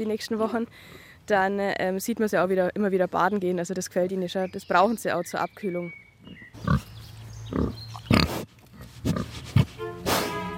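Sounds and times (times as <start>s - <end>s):
speech: 0.0s - 6.9s
woolly pigs grunting: 6.6s - 6.9s, 7.5s - 10.4s.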